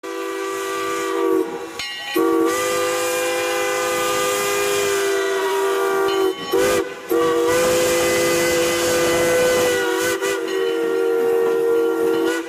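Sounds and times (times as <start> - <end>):
steam train whistle: 0.0 - 12.4.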